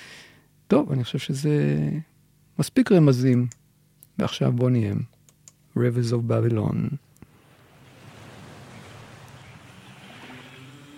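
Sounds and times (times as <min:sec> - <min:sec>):
speech: 0:00.7 - 0:03.6, 0:04.2 - 0:05.2, 0:05.8 - 0:07.0
surf waves washing: 0:07.3 - 0:10.9.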